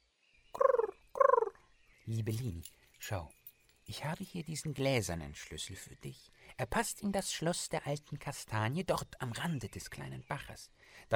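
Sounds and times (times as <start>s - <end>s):
dove cooing: 0.6s - 1.6s
speech: 2.1s - 11.1s.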